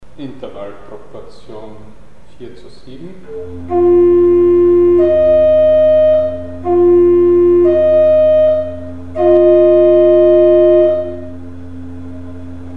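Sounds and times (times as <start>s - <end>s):
natural seventh interval with frequency ratio 4 to 7: 3.3s - 12.7s.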